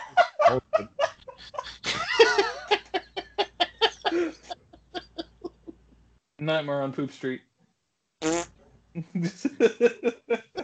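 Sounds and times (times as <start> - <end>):
rhythmic voiced bursts of laughter: 0.0 - 5.8, 9.0 - 10.6
speech: 0.5 - 1.6, 6.4 - 7.5, 9.2 - 10.4
buzzy raspberry blown with the lips as a fake fart: 8.2 - 8.5.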